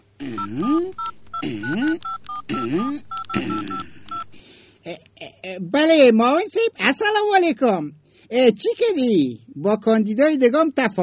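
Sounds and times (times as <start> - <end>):
speech: 0.2 - 3.5, 5.6 - 11.0
telephone keypad tones dialling a number: 0.4 - 4.4.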